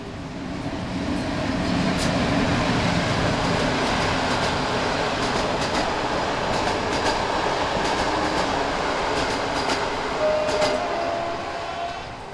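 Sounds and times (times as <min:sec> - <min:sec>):
express passenger train wheels roaring on rails: 0:00.0 - 0:12.3.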